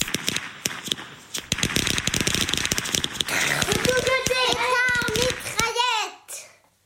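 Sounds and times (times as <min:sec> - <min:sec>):
string of small firecrackers popping: 0:00.0 - 0:05.9
child's excited voice: 0:03.3 - 0:06.6.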